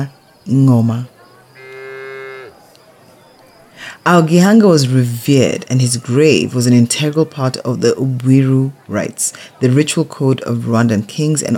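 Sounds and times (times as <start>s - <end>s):
speech: 0.0s - 1.1s, 4.0s - 11.5s
cow mooing: 1.5s - 2.6s.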